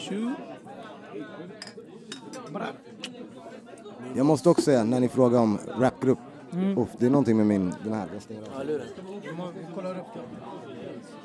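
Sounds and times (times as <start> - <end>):
people's voices and murmuring: 0.0 - 11.2
speech: 0.1 - 11.2
glasses clinking in a toast: 1.6 - 2.6.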